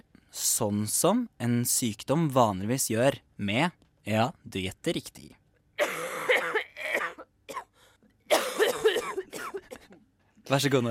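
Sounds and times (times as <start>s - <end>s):
speech: 0.3s - 5.4s, 10.5s - 10.8s
harsh raspy coughing: 5.8s - 10.1s.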